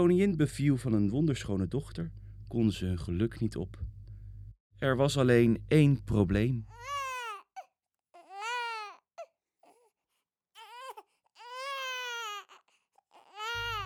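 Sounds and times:
speech: 0:00.0 - 0:03.9, 0:04.8 - 0:07.0
baby crying: 0:06.7 - 0:09.9, 0:10.6 - 0:13.8.

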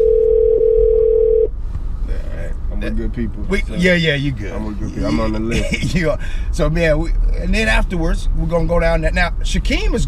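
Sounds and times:
steady electronic ringing tone from a phone line: 0:00.0 - 0:01.5
low rumble: 0:00.0 - 0:10.0
speech: 0:02.8 - 0:10.0.

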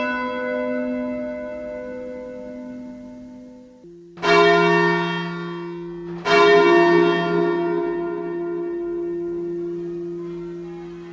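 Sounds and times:
church bells ringing: 0:00.0 - 0:11.1.

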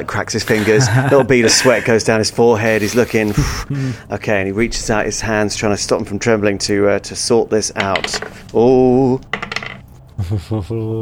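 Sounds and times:
speech: 0:00.0 - 0:09.5, 0:10.2 - 0:11.0
laughter: 0:00.4 - 0:02.1, 0:10.2 - 0:11.0
short low voiced sounds: 0:00.4 - 0:04.0
new sparkly dice tumbling and rattling across a hard tabletop: 0:09.3 - 0:09.8.

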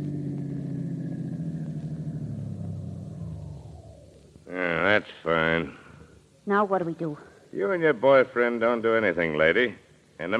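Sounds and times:
car engine rumbling while turning into a workyard and parking in a garage: 0:00.0 - 0:06.2
speech: 0:05.0 - 0:05.8, 0:06.4 - 0:10.3.

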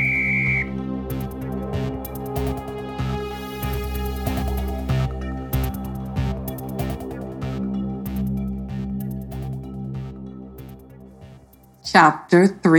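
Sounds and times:
short shrill whistle blast: 0:00.0 - 0:00.8
music with a rhythmic pulse: 0:00.0 - 0:12.7
speech: 0:11.9 - 0:12.7.

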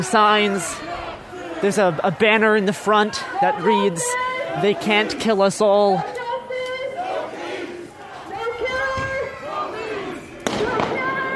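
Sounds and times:
speech: 0:00.0 - 0:01.0, 0:01.6 - 0:06.1
protest crowd shouting and chanting: 0:00.0 - 0:11.3
firework exploding over protest crowd: 0:10.4 - 0:11.1.

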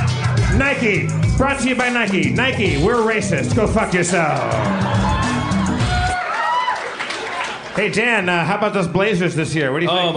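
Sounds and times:
speech: 0:00.6 - 0:05.1, 0:07.8 - 0:10.1
live crowd roaring and cheering with shouts and whoops: 0:01.7 - 0:08.0.

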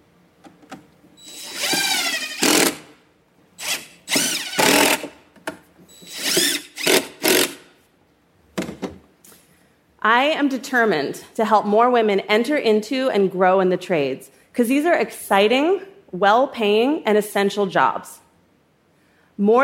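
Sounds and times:
handling clicks and clunks: 0:00.3 - 0:01.8, 0:05.3 - 0:05.9
power drill whirring: 0:01.2 - 0:02.9, 0:03.6 - 0:05.1, 0:06.0 - 0:07.6
speech: 0:10.0 - 0:18.2, 0:19.4 - 0:19.6.

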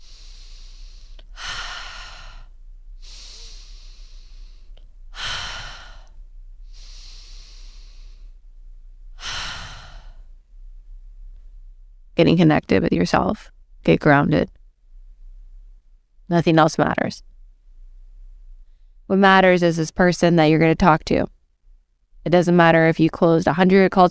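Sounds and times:
person taking slow deep breaths: 0:00.0 - 0:10.6
speech: 0:12.2 - 0:14.6, 0:16.3 - 0:17.3, 0:19.1 - 0:21.4, 0:22.2 - 0:24.0.

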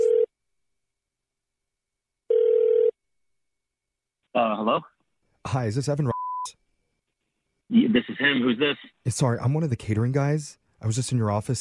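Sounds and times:
telephone ringing tone over a phone line: 0:00.0 - 0:00.3, 0:02.3 - 0:03.0
speech: 0:04.4 - 0:04.9, 0:05.5 - 0:06.1, 0:07.9 - 0:11.5.

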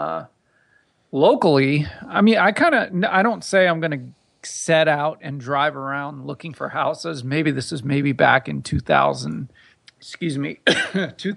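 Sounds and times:
speech: 0:00.0 - 0:00.4, 0:01.1 - 0:11.3
person clearing throat: 0:10.6 - 0:11.2
person coughing in a rough voiced rasp: 0:10.6 - 0:11.2.

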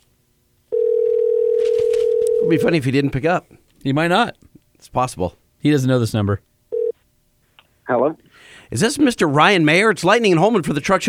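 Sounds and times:
telephone dial tone: 0:00.7 - 0:02.6, 0:06.7 - 0:06.9
speech: 0:02.5 - 0:06.5, 0:07.9 - 0:11.0.

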